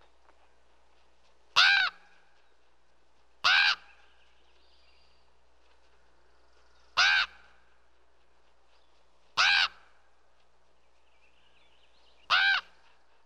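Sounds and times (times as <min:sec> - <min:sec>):
crow cawing harshly: 0:01.6 - 0:02.0, 0:03.4 - 0:03.9, 0:07.0 - 0:07.4, 0:09.4 - 0:09.8, 0:12.3 - 0:12.7.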